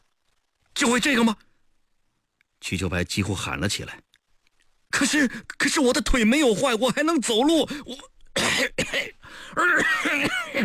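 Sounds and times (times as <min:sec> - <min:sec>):
speech: 0:00.8 - 0:01.5, 0:02.6 - 0:04.1, 0:04.9 - 0:10.6
man with lung disease coughing violently: 0:07.7 - 0:10.6.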